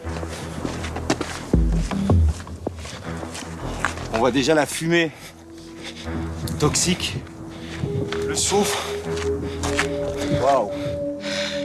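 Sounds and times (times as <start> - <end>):
footsteps crunching on a hike up to a volcano summit: 0.0 - 11.1
speech: 4.2 - 5.3, 6.0 - 9.2, 10.3 - 10.9.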